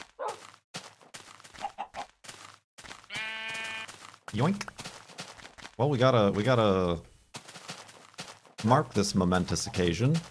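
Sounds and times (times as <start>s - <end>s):
sheep bleating: 3.1s - 4.0s
speech: 4.3s - 4.8s, 5.8s - 7.1s, 8.6s - 10.2s.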